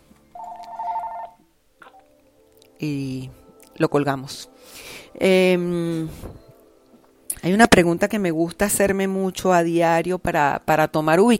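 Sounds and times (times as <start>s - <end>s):
landline telephone ringing with a warbling electronic trill: 0.4s - 1.4s
speech: 2.8s - 6.4s, 7.4s - 11.3s.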